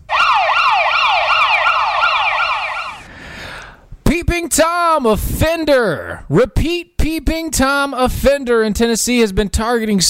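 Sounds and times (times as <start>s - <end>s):
emergency vehicle siren wailing in up-and-down sweeps: 0.0s - 3.2s
speech: 4.5s - 10.0s.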